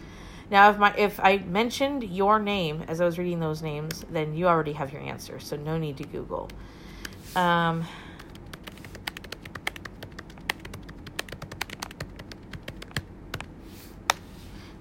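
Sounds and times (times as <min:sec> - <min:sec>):
speech: 0:00.5 - 0:08.0
typing on a laptop keyboard: 0:08.2 - 0:13.5.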